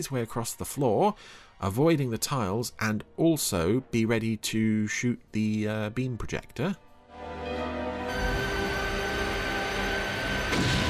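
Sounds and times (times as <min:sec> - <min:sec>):
speech: 0:00.0 - 0:06.8
steady electronic hum: 0:08.1 - 0:10.8
explosions: 0:10.3 - 0:10.8.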